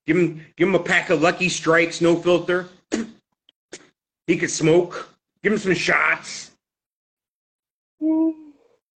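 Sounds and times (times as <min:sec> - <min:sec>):
speech: 0:00.0 - 0:03.2, 0:04.3 - 0:06.5, 0:08.0 - 0:08.4
person yawning: 0:08.0 - 0:08.8.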